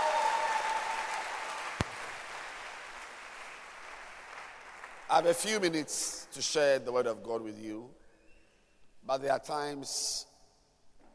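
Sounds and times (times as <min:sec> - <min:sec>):
audience applauding: 0:00.0 - 0:05.4
speech: 0:05.1 - 0:08.0, 0:09.0 - 0:10.3.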